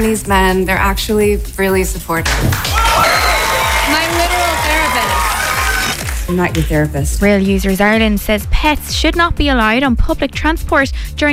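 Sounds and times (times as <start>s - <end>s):
speech: 0.0s - 2.8s, 6.3s - 11.3s
steady rhythmic thumps: 1.2s - 10.6s
studio audience cheering and whooping during a monologue: 2.5s - 6.3s.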